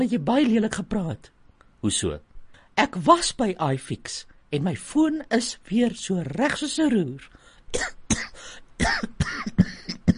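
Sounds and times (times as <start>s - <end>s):
speech: 0.0s - 9.7s
raspy coughs: 7.7s - 10.1s.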